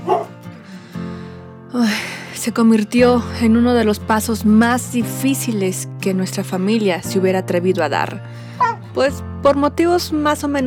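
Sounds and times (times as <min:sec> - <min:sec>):
dog barking: 0:00.0 - 0:00.4, 0:08.6 - 0:08.8
speech: 0:01.8 - 0:10.6.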